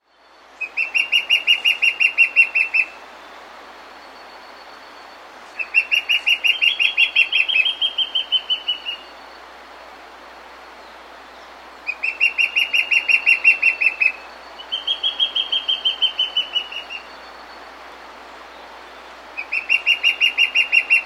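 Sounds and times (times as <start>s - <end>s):
White-Backed Fire-Eye of South America: 0.6s - 3.1s, 5.4s - 9.2s, 11.4s - 17.4s, 19.4s - 21.0s.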